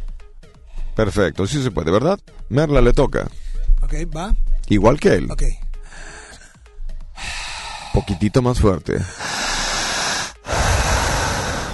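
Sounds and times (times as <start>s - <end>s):
speech: 1.0s - 5.6s, 8.1s - 9.3s
group of people inhaling forcefully in unison: 5.8s - 8.2s, 9.0s - 11.7s.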